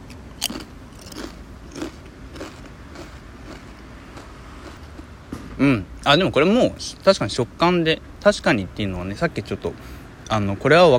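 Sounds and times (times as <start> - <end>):
person biting and chewing thick-cut potato chips: 0.0 - 5.1
speech: 5.6 - 10.9.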